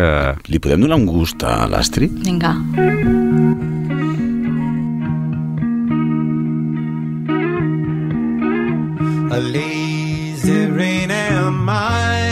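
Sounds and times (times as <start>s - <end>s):
speech: 0.0s - 3.7s
distorted effects-laden guitar chords in a rock song: 0.7s - 12.2s
sustained low bass in a rock song: 1.0s - 5.0s.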